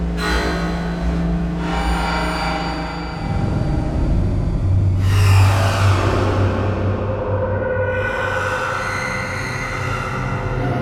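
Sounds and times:
digital reverse electronic whoosh: 0.1s - 10.7s
digital reverse pangs: 0.2s - 5.7s.

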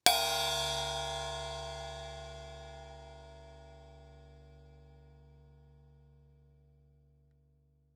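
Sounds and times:
cartoon drum and cymbal hit: 0.0s - 4.8s.

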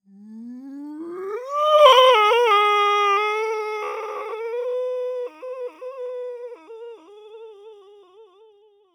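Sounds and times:
ghost moaning in pain: 0.6s - 7.5s.

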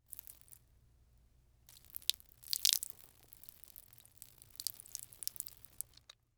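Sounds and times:
person urinating on ground: 0.0s - 0.6s, 1.7s - 6.2s.

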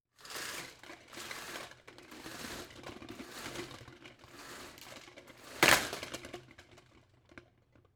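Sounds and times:
household blinds opening: 0.2s - 6.3s.

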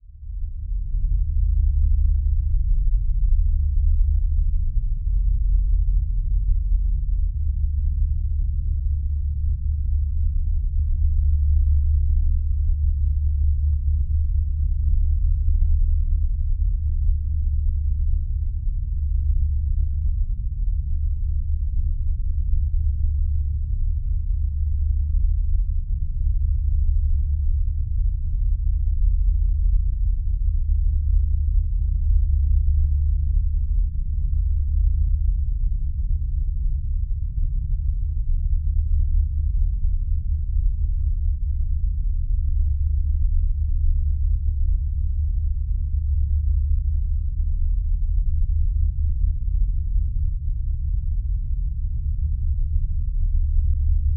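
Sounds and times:
deep subsonic bass drone rumble: 0.0s - 54.1s.

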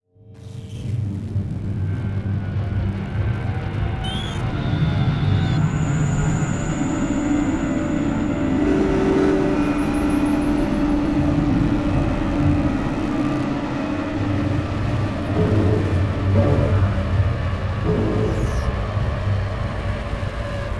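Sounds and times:
reversed distorted spooky static imaging element: 0.4s - 20.7s.

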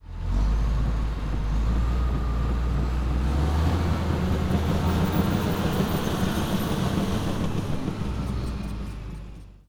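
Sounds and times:
bulldozer driving by: 0.0s - 9.6s.

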